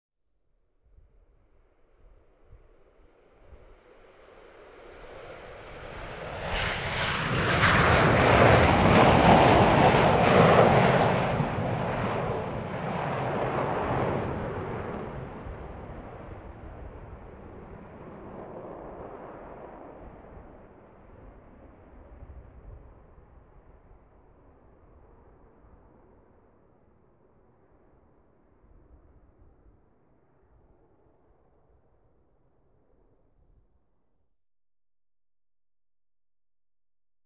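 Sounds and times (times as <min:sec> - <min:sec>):
Concorde aircraft taking off: 0:04.0 - 0:20.3.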